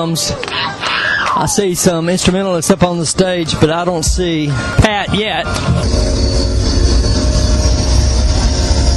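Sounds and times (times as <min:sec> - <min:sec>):
speech: 0:00.0 - 0:06.6
tonal hum: 0:03.9 - 0:08.9
train rolling past played as a concert intro: 0:04.0 - 0:08.9
metallic train wheel squeal: 0:04.5 - 0:08.9.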